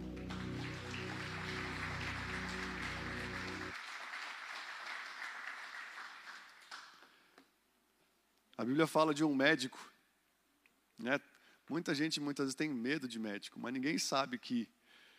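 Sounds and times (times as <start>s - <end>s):
low sustained musical drone: 0.0s - 3.7s
crowd applauding: 0.0s - 7.2s
speech: 8.6s - 9.9s, 11.0s - 14.8s.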